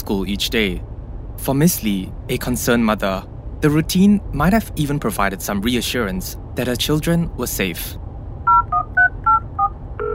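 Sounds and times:
low hum: 0:00.0 - 0:10.1
speech: 0:00.1 - 0:08.0
two-tone telephone keypad beeps: 0:08.5 - 0:10.1.

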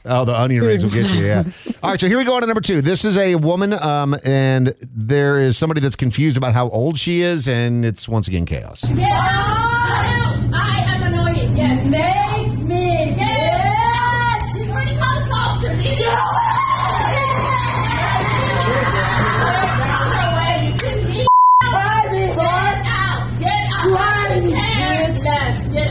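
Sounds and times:
speech: 0:00.0 - 0:12.1
steady low hum: 0:00.0 - 0:25.8
laughter: 0:00.6 - 0:02.0, 0:16.6 - 0:21.3
short electronic drive-thru intercom beep: 0:21.3 - 0:21.7.

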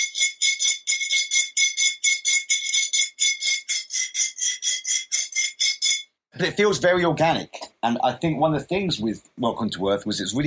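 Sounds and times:
metal scraped against labelled glass: 0:00.0 - 0:06.1
speech: 0:06.4 - 0:10.4.

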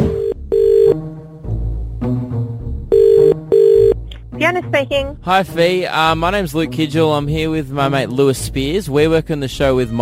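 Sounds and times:
phone ringing with electronic tone through a call line: 0:00.1 - 0:01.0, 0:02.9 - 0:04.0
speech: 0:04.8 - 0:10.0.

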